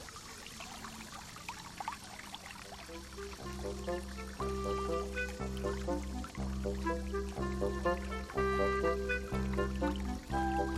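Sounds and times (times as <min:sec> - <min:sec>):
stream water flowing and trickling through a forest: 0:00.0 - 0:10.7
calm sustained musical tones: 0:02.7 - 0:10.7.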